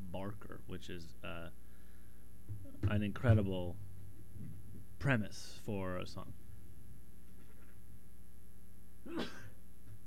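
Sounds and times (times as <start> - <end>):
low hum: 0.0 - 10.0
speech: 0.1 - 1.7, 2.5 - 6.4, 9.0 - 9.4
sneeze: 9.1 - 9.6.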